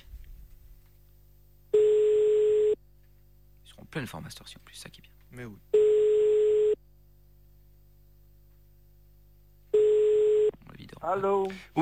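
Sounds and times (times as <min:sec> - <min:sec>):
telephone call tone while a number is dialed: 0:01.7 - 0:02.8, 0:05.8 - 0:06.8, 0:09.7 - 0:10.6
speech: 0:03.9 - 0:05.7, 0:11.0 - 0:11.7.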